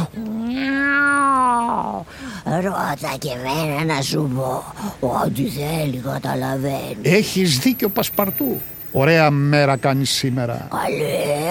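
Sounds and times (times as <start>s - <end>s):
cat meowing: 0.0s - 2.0s
speech: 2.5s - 11.4s.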